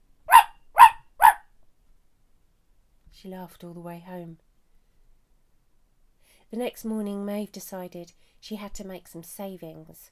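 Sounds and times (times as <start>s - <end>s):
dog barking: 0.3s - 1.4s
speech: 3.2s - 4.5s, 6.5s - 10.1s.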